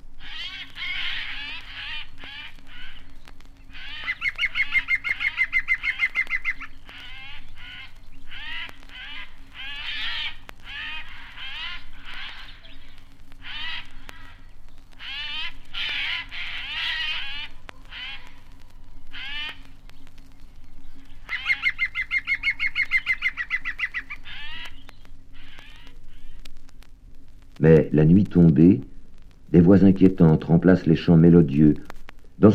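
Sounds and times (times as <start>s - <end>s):
jays screeching harshly in a forest: 0.0s - 32.5s
woodpecker ringing call in a forest: 0.2s - 26.5s
speech: 27.6s - 28.9s, 29.5s - 32.5s.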